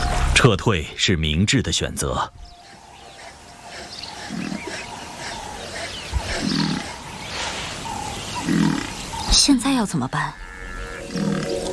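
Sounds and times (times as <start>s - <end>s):
speech: 0.4s - 2.5s, 9.3s - 10.5s
lion growling: 2.6s - 9.3s, 10.8s - 11.7s.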